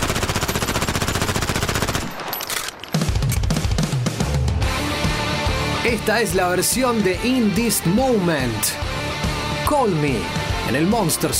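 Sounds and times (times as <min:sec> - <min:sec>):
machine gun firing in dense bursts: 0:00.0 - 0:03.1
heavy music track: 0:03.0 - 0:11.3
speech: 0:05.9 - 0:08.9, 0:09.7 - 0:11.3.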